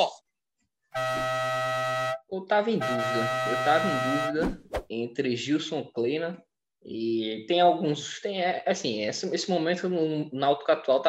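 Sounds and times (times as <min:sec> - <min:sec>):
loud sustained air horn blast with a harsh buzzing tone: 0:00.9 - 0:04.5
speech: 0:02.4 - 0:11.0.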